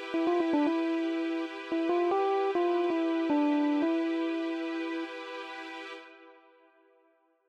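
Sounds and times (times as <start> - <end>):
melody in E phrygian mode: 0.2 - 5.2.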